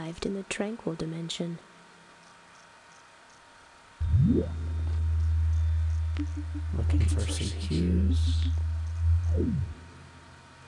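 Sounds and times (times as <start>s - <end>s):
speech: 0.1s - 1.7s, 6.2s - 8.7s, 9.3s - 9.8s
computer fan hum: 3.6s - 10.6s
falling whine of computer fan shutting off: 4.0s - 10.6s.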